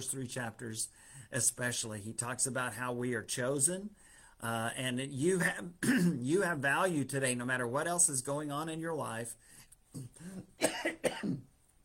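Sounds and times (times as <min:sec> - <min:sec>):
speech: 0:00.0 - 0:11.5
person coughing: 0:05.8 - 0:06.2, 0:10.0 - 0:11.5.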